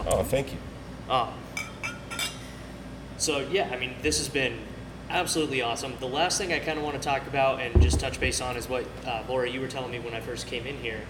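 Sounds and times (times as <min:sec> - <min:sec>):
speech: 0:00.1 - 0:01.5, 0:03.2 - 0:11.0
glasses clinking in a toast at a brewery: 0:01.6 - 0:02.4.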